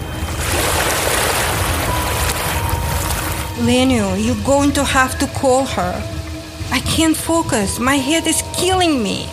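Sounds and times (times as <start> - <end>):
splashing through shallow water near ocean waves: 0.1 - 5.9
speech: 3.6 - 9.3.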